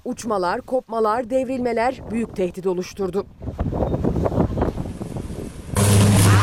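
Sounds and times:
speech: 0:00.0 - 0:04.0
gusty wind roaring during a storm: 0:01.5 - 0:06.4.

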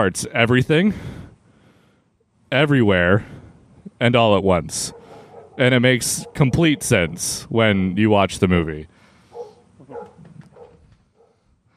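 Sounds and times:
speech: 0:00.0 - 0:01.2, 0:02.5 - 0:03.4, 0:04.0 - 0:05.0, 0:05.6 - 0:08.9
dog barking: 0:04.8 - 0:07.4, 0:09.3 - 0:11.4.

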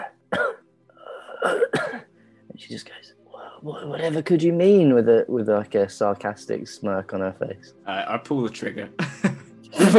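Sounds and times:
person imitating a cough: 0:00.0 - 0:00.6, 0:01.4 - 0:02.1
speech: 0:02.6 - 0:09.9.

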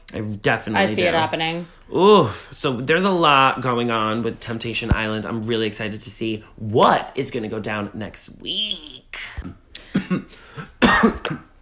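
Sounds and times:
speech: 0:00.1 - 0:11.4
person with a lingering cough coughing harshly: 0:09.8 - 0:11.6.

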